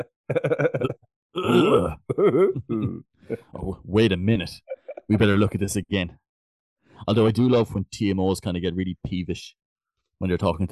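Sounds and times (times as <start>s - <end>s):
voice mimicking coughing in a rhythm: 0.0s - 3.5s
speech: 0.0s - 6.2s, 7.0s - 9.6s, 10.2s - 10.7s.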